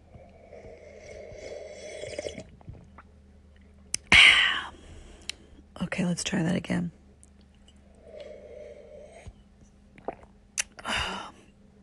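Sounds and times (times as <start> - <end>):
low steady hum: 0.0 - 11.8
gurgling sip of a drink: 0.1 - 3.1, 10.0 - 10.8
person slurping coffee into a microphone: 0.7 - 2.5, 10.0 - 10.3
speech: 5.8 - 7.0.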